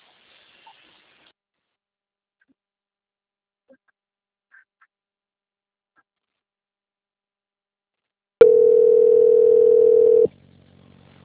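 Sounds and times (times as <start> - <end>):
telephone transfer tone to a bank quality-control line: 8.4 - 10.3.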